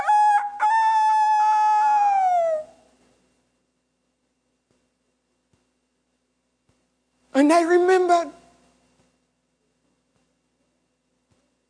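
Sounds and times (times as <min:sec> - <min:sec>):
rooster crowing: 0:00.0 - 0:02.8
speech: 0:07.4 - 0:08.4.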